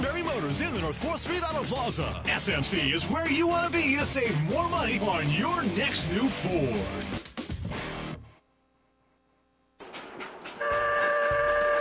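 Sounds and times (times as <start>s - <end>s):
speech: 0.4s - 7.3s
steam train giving rides at a river festival chugging: 9.8s - 11.7s
steam train sustained horn blast: 10.6s - 11.7s.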